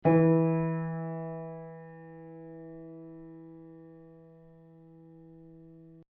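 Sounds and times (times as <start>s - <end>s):
Pleyel piano note with original hammer: 0.0s - 6.1s.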